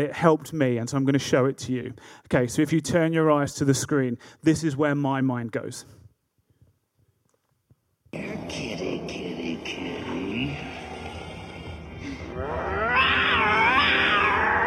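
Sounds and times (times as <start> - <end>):
speech: 0.0 - 6.0
noise: 0.0 - 14.6
voices: 8.2 - 12.8
cat meowing in a video shown on a screen: 12.7 - 14.6.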